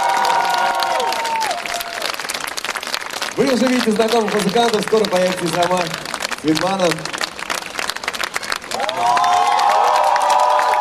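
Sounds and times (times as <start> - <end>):
crowd cheering and whooping: 0.0 - 2.2, 8.6 - 10.7
crowd clapping: 0.0 - 10.7
speech: 3.4 - 7.2.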